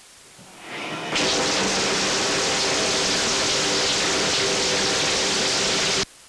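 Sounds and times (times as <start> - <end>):
shower running: 0.7 - 6.2.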